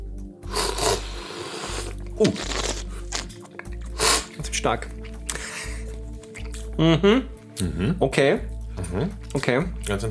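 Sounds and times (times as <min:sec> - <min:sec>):
slurp of coffee from a small tasting spoon during a coffee tasting: 0:00.4 - 0:06.7
speech: 0:02.2 - 0:02.7, 0:04.6 - 0:05.0, 0:06.8 - 0:10.1.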